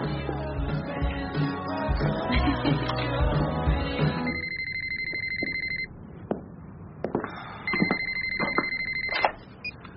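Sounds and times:
loud music: 0:00.0 - 0:04.4
electronic telephone ringing: 0:04.3 - 0:05.9, 0:07.7 - 0:09.4.

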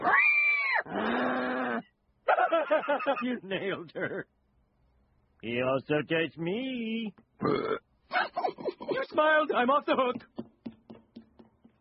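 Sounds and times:
pig squealing loudly: 0:00.0 - 0:01.9
speech: 0:02.7 - 0:04.4, 0:05.4 - 0:07.8, 0:08.6 - 0:10.3.

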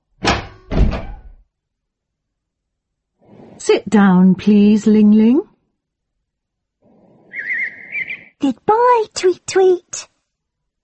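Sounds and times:
door opening: 0:00.7 - 0:01.4
speech: 0:03.7 - 0:05.5, 0:08.4 - 0:10.1.

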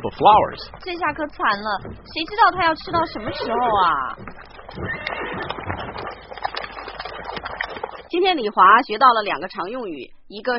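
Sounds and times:
speech: 0:00.0 - 0:06.6, 0:08.1 - 0:10.5
horse hooves clopping on the ground: 0:00.0 - 0:09.5
horse neighing: 0:03.0 - 0:07.0.

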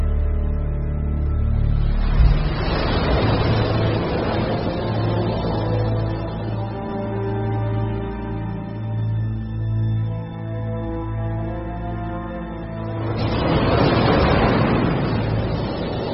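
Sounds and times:
low sustained tonal drone: 0:00.0 - 0:16.1
stormy wind: 0:00.0 - 0:16.1
roar of stormy sea waves: 0:01.3 - 0:08.6, 0:11.5 - 0:16.1.

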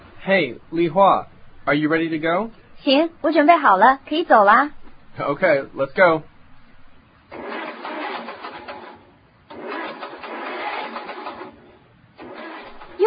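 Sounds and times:
speech: 0:00.2 - 0:06.3
broken car engine cranking without starting in New Jersey: 0:07.3 - 0:13.0.

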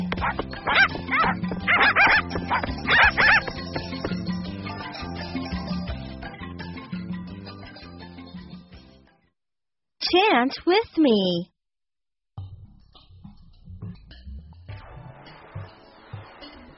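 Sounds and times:
puppies yipping and barking: 0:00.2 - 0:03.6
speech: 0:10.4 - 0:11.5.

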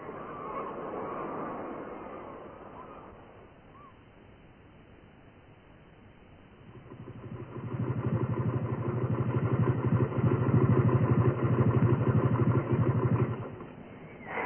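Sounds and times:
motorcycle engine idling: 0:06.5 - 0:13.8.

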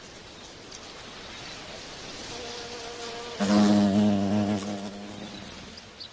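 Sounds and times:
bee buzzing while collecting flower oil: 0:02.3 - 0:05.8.

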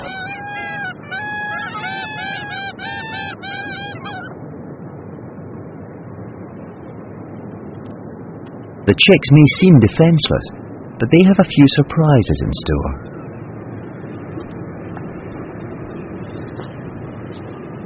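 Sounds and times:
Belcher's gulls giving harsh nasal calls: 0:00.0 - 0:04.9, 0:08.9 - 0:17.8
steady roar of wind or surf: 0:00.0 - 0:17.8
speech: 0:08.9 - 0:13.1.

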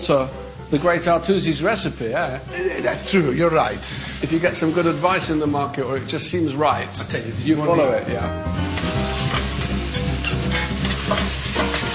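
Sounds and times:
speech: 0:00.0 - 0:08.9
meat browning and sizzling in a pan: 0:02.5 - 0:05.7, 0:06.7 - 0:11.9.

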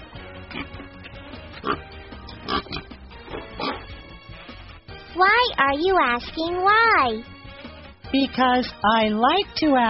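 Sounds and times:
pig oinking and grunting: 0:00.5 - 0:00.9, 0:01.6 - 0:03.8
speech: 0:05.2 - 0:07.3, 0:08.1 - 0:09.8.

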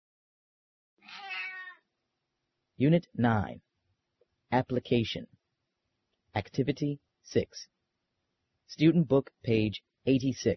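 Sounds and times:
cat meowing: 0:01.0 - 0:01.8
speech: 0:02.8 - 0:03.7, 0:04.5 - 0:05.4, 0:06.3 - 0:07.8, 0:08.7 - 0:10.5.

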